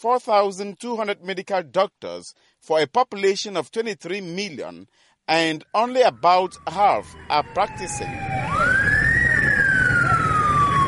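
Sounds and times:
speech: 0.0 - 8.5
ambulance siren rushing to a general hospital in Yaoundé Cameroon: 5.6 - 10.8
steady rumble of traffic: 6.2 - 10.8.

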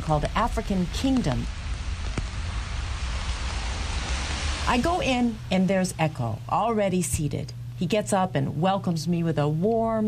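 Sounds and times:
steady rain during a cold rainy walk outside: 0.0 - 6.8
speech: 0.1 - 1.6, 4.7 - 10.0.

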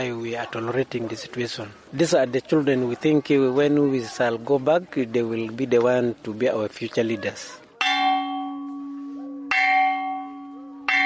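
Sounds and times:
speech: 0.0 - 7.6
school bell clanging: 7.8 - 11.0.

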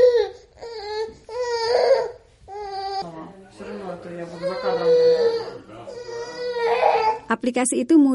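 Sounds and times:
baby crying: 0.0 - 7.3
speech: 7.3 - 8.1.

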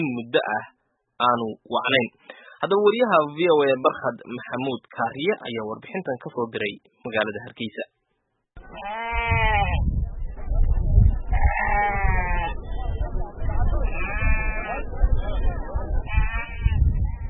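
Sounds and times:
speech: 0.0 - 8.0, 8.7 - 9.1
steady crowd murmur at a livestock market: 8.6 - 17.2
sheep and goats bleating at a busy livestock market: 8.7 - 9.9, 11.3 - 12.6, 13.8 - 14.8, 16.0 - 17.2.

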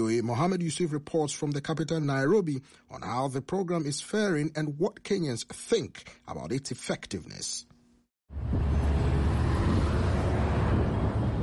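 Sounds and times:
speech: 0.0 - 7.7
dense street traffic rumble with vehicles idling and creeping: 8.3 - 11.4.

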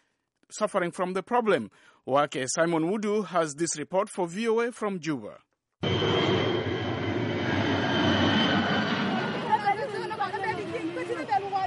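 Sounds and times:
speech: 0.5 - 6.4
large cargo plane roaring overhead while airdropping sacks of sorghum: 5.8 - 11.6.

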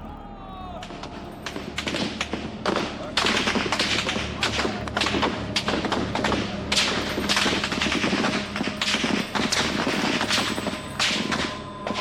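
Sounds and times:
people shouting: 0.0 - 6.7
gunshots in Beijing during the June Fourth incident: 0.8 - 12.0.

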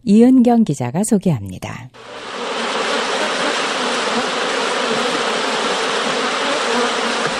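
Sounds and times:
speech: 0.0 - 2.4
many bees buzzing: 2.0 - 7.3.

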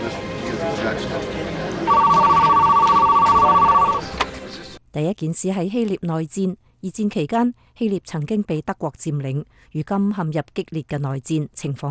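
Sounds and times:
speech: 0.8 - 2.0, 5.0 - 11.8
telephone ringing with fast-trilling electronic tone: 1.9 - 4.1.

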